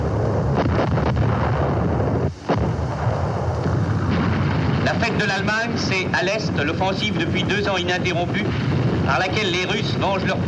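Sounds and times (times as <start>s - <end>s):
heavy artillery cannon fire barrage: 0.0s - 10.4s
speech: 5.2s - 10.4s.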